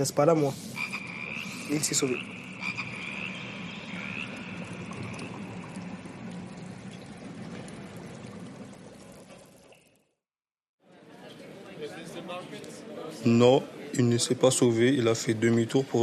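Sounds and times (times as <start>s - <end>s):
speech: 0.0s - 0.9s, 1.7s - 2.8s, 13.2s - 16.0s
dense chorus of frogs croaking: 0.7s - 9.9s.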